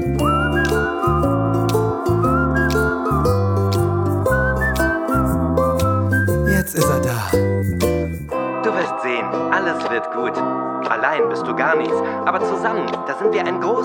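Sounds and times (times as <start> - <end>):
person whistling a wavering cheerful tune: 0.0 - 8.4
steady chord-like instrumental backing pulsing in short blocks: 0.0 - 12.8
speech: 11.1 - 13.8.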